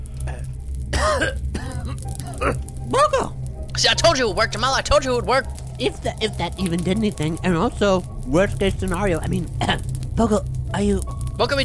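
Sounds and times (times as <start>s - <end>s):
steady low hum: 0.0s - 11.6s
man unable to talk making rough throat-clearing coughs: 1.0s - 2.6s
speech: 2.4s - 11.6s.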